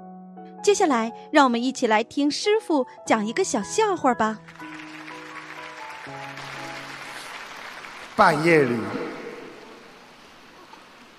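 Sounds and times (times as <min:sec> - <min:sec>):
speech: 0:00.6 - 0:04.6, 0:08.2 - 0:09.0
audience applauding: 0:04.4 - 0:09.9.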